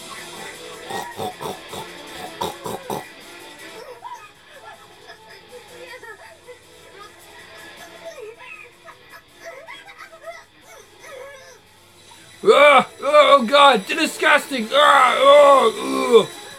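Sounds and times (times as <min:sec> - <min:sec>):
man imitating pig grunting, snorting and squealing: 0:00.0 - 0:03.1, 0:12.4 - 0:13.4, 0:14.8 - 0:16.3
speech: 0:13.6 - 0:16.4.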